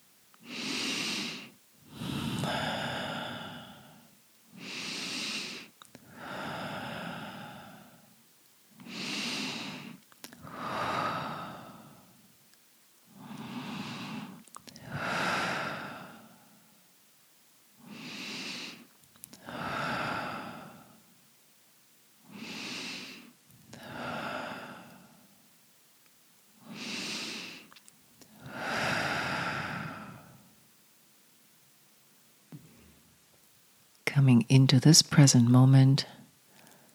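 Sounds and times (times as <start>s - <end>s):
deep cleansing breaths in through the nose and out through the mouth during a guided meditation: 0.4s - 8.2s, 8.8s - 12.3s, 13.1s - 16.8s, 17.8s - 21.1s, 22.2s - 25.4s, 26.6s - 30.6s, 36.4s - 36.9s
speech: 34.2s - 36.2s.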